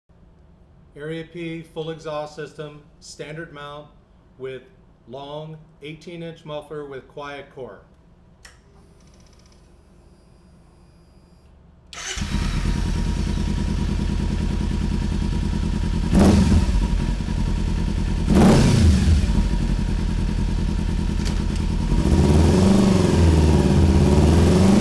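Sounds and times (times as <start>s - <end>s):
motorcycle engine with standard mount long quiet muffler: 12.1s - 24.7s.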